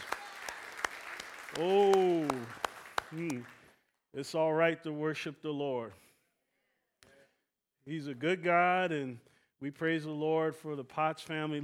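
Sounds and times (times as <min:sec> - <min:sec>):
audience clapping hands in a steady rhythm: 0:00.0 - 0:03.8
speech: 0:01.6 - 0:06.0, 0:07.9 - 0:11.6.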